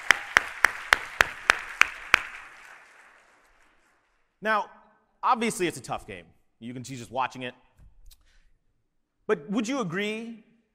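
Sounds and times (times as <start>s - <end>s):
crisp evenly spaced claps: 0.0s - 4.2s
speech: 4.4s - 7.6s, 9.3s - 10.5s.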